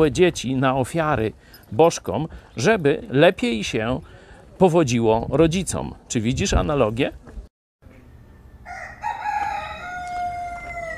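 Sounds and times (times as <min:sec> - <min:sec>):
speech: 0:00.0 - 0:07.2
rooster crowing: 0:08.3 - 0:10.9.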